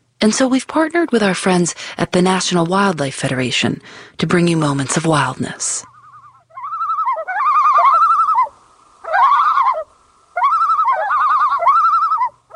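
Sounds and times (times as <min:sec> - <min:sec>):
speech: 0:00.2 - 0:05.9
common loon giving wavering tremulous laughing calls: 0:05.9 - 0:12.5.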